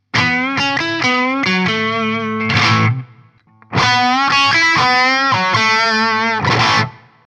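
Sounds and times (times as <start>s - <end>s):
electric guitar neck and bridge pickups through 25W amplifier: 0.0s - 7.2s.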